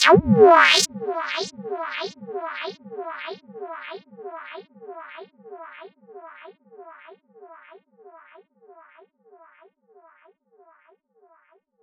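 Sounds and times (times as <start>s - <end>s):
squelchy psytrance synth: 0.0s - 5.2s.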